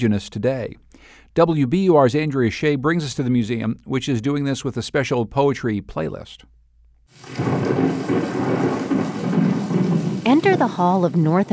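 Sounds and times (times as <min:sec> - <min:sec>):
speech: 0:00.0 - 0:08.8, 0:10.3 - 0:11.5
steady rain: 0:07.1 - 0:11.5
thunder rumbling: 0:07.1 - 0:11.5.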